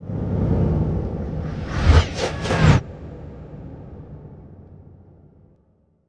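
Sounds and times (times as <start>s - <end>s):
horror synth whoosh composite: 0.9s - 3.7s.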